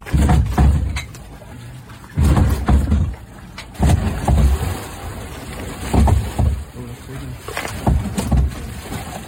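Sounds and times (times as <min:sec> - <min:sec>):
killer whales ramming a boat hull from below: 0:00.0 - 0:01.0, 0:02.2 - 0:04.6, 0:05.8 - 0:06.7, 0:07.7 - 0:08.7
boat hull creaking: 0:00.0 - 0:09.2
water sloshing: 0:00.0 - 0:09.2.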